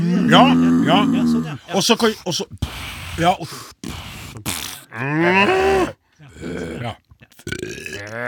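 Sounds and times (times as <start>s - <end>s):
man imitating cow with drawn-out groaning moos: 0.0s - 1.6s, 4.9s - 8.2s
speech: 0.3s - 3.9s, 5.0s - 8.2s.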